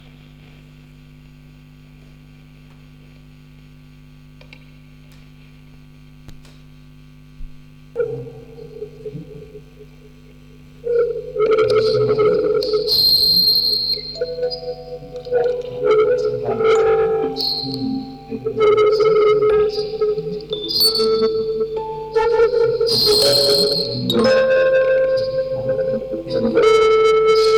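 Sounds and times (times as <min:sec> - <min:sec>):
music box quartet with tape through vocoder: 0:10.9 - 0:27.5.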